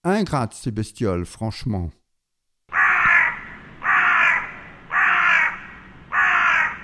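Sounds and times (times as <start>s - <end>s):
speech: 0.1s - 2.0s
crow giving harsh raspy scolding caws: 2.7s - 6.8s.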